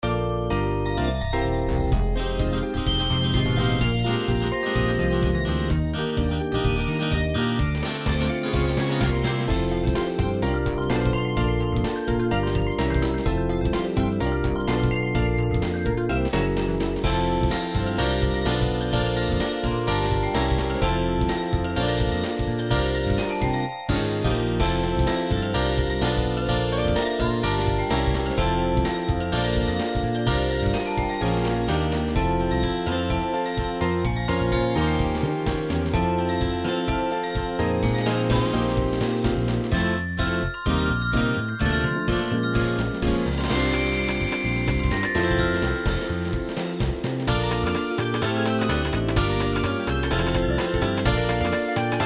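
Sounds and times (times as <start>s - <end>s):
sequenced electronic jazz remix of Super Nintendo game music: 0.0s - 52.0s.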